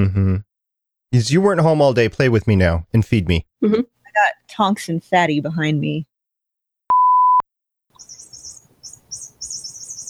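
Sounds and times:
speech: 0.0 - 0.5, 1.1 - 6.1
chirping cat toy: 8.0 - 10.0.

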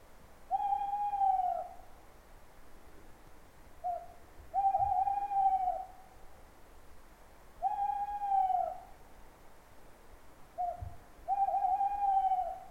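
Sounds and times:
faint rain hiss: 0.0 - 12.6
owl hooting: 0.5 - 1.8, 3.8 - 6.0, 7.6 - 8.9, 10.6 - 12.6.

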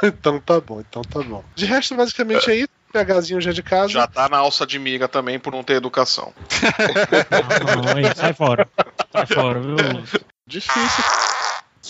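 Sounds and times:
speech: 0.0 - 11.4
laughter: 6.4 - 11.2
loud fart into the microphone: 10.7 - 11.8.

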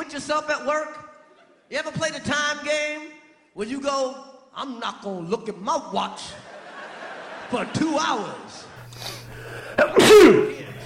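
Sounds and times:
speech: 0.2 - 1.0, 1.7 - 6.5, 7.5 - 9.1
laughter: 1.3 - 1.7, 6.3 - 10.8
loud sneeze: 9.8 - 10.6.

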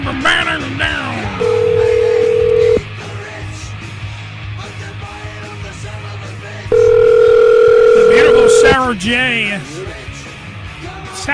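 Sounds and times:
speech: 0.1 - 1.4, 8.6 - 10.0
steady telephone dialing and ringing tones: 1.3 - 2.9, 6.7 - 8.8.

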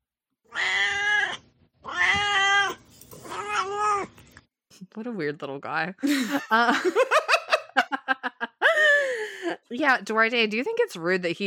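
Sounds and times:
domestic cat meowing: 0.5 - 4.1
speech: 5.0 - 7.2, 9.7 - 11.4
laughter: 6.0 - 9.3.

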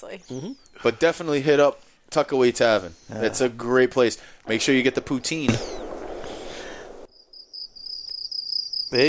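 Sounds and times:
speech: 0.0 - 5.8
crickets chirping at night: 4.2 - 9.0.

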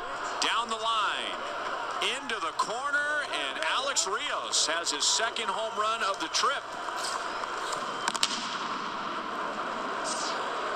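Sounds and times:
steady stadium crowd roar: 0.0 - 10.7
speech: 2.0 - 7.3
stadium firework pops: 8.0 - 8.7.

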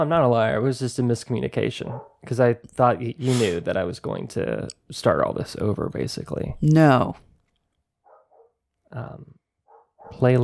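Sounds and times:
speech: 0.0 - 7.3, 8.9 - 9.4, 10.1 - 10.4
dog barking: 1.9 - 2.2, 8.0 - 8.6, 9.7 - 10.3.

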